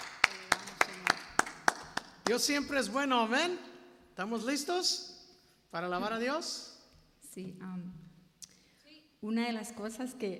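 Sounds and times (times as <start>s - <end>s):
hands clapping as applause at a church service: 0.0s - 2.8s
speech: 2.3s - 5.1s, 5.7s - 6.7s, 7.4s - 8.1s, 9.2s - 10.3s.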